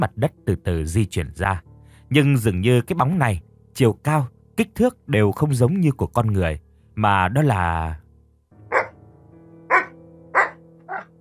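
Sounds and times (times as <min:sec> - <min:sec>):
speech: 0:00.0 - 0:08.0
dog barking: 0:08.7 - 0:09.0, 0:09.7 - 0:11.1.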